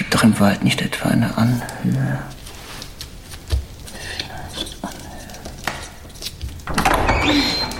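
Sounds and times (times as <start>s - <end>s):
speech: 0.2s - 2.4s
door creaking squeal: 6.3s - 7.7s
door knocks and rattles while opening: 6.7s - 7.7s.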